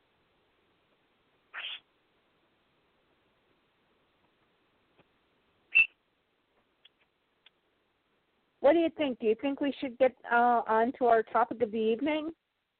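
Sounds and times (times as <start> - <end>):
pet bird screeching: 1.6 - 1.8, 5.7 - 5.9
speech: 8.7 - 12.4.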